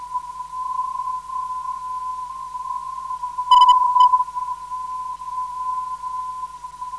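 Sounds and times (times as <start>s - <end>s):
non-directional radio beacon signal: 3.5s - 4.3s.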